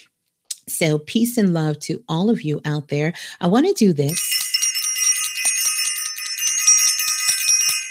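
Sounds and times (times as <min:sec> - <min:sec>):
speech: 0:00.7 - 0:04.4
bell ringing rapidly: 0:04.1 - 0:07.8.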